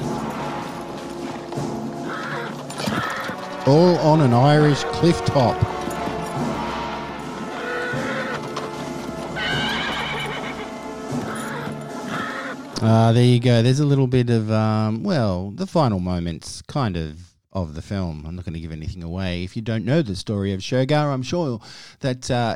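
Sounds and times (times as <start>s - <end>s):
horse hooves galloping: 0.0s - 12.8s
busy dramatic backdrop: 0.0s - 14.4s
horse whinnying loudly: 2.0s - 3.8s, 7.5s - 12.8s
speech: 3.6s - 5.8s, 12.8s - 22.5s.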